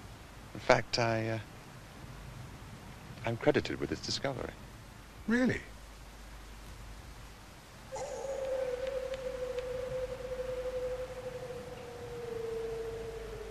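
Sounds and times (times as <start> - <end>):
hiss: 0.0 - 13.4
speech: 0.6 - 1.5, 3.2 - 4.6, 5.3 - 5.7
hound howling on the moor: 7.9 - 13.4.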